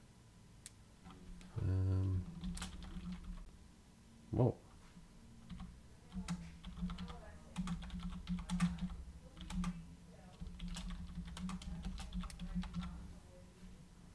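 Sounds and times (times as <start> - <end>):
typing on a computer keyboard: 2.3 - 3.5, 5.4 - 13.0
speech: 4.3 - 4.6.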